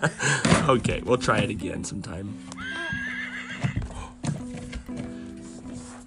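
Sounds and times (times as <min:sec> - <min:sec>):
speech: 0:00.0 - 0:02.7
horse whinnying: 0:02.5 - 0:03.9.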